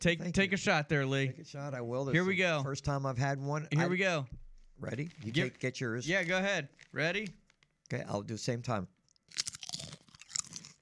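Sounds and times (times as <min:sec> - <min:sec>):
speech: 0:00.0 - 0:09.4
crunching of salted rice cakes being bitten and chewed: 0:04.8 - 0:08.0, 0:09.0 - 0:10.8.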